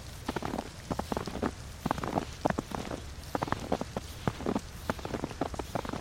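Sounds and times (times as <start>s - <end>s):
footsteps crunching through snow: 0.0s - 6.0s.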